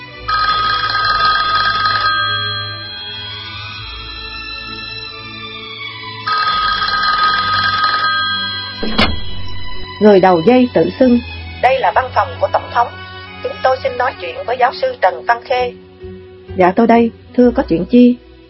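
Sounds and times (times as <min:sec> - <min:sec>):
telephone ringing with trilling bell tones: 0:00.3 - 0:04.8, 0:06.2 - 0:09.9
low hum: 0:08.8 - 0:10.0
speech: 0:10.0 - 0:13.0, 0:13.6 - 0:15.8, 0:16.6 - 0:18.2.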